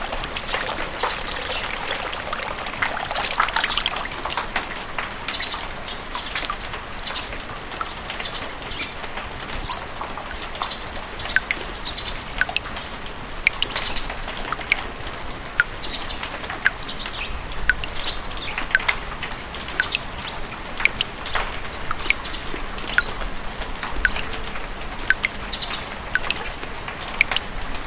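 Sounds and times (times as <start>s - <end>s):
sharp drip taps: 0.0s - 4.7s, 10.3s - 11.7s, 12.3s - 12.8s, 13.4s - 14.9s, 15.6s - 17.1s, 17.7s - 19.0s, 19.7s - 23.3s, 23.9s - 24.4s, 25.0s - 25.4s, 26.1s - 26.4s, 27.2s - 27.5s
steady dense rain: 0.0s - 27.8s.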